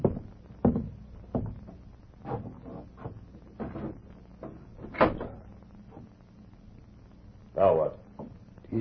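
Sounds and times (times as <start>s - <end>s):
wooden window creaking and knocking as it is pushed open: 0.0s - 6.1s.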